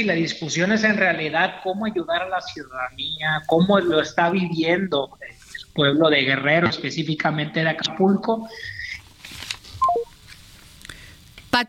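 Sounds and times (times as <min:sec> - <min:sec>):
speech: 0:00.0 - 0:08.8
soft noise: 0:00.0 - 0:11.6
telephone dialing beeps while reconnecting a dropped call: 0:09.8 - 0:10.1.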